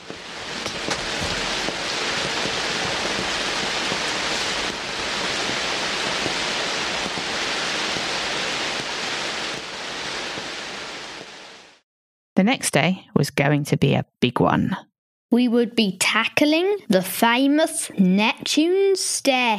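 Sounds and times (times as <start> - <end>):
steady rain falling: 0.0 - 11.8
speech: 12.4 - 19.5.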